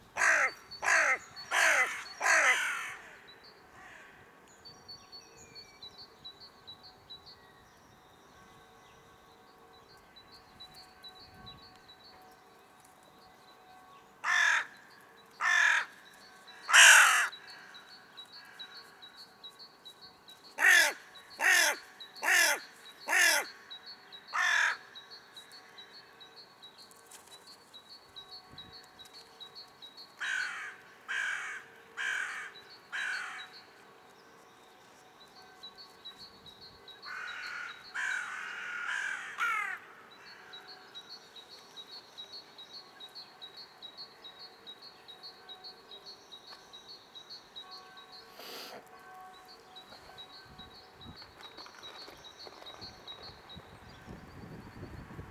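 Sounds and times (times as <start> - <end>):
hooded crow Corvus cornix: 0.2 - 4.2, 14.2 - 14.8, 15.4 - 16.0, 16.6 - 17.8, 20.6 - 23.7, 24.3 - 24.9, 30.2 - 33.7, 37.0 - 40.8.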